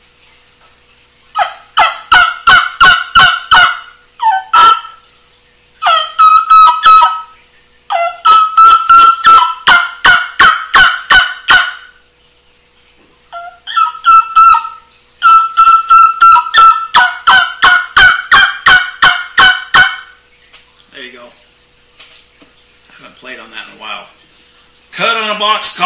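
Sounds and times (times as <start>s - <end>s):
turkey yelps and kee-kee notes on a handmade trumpet-style turkey call: 1.4s - 5.1s, 5.8s - 12.0s, 13.3s - 20.2s.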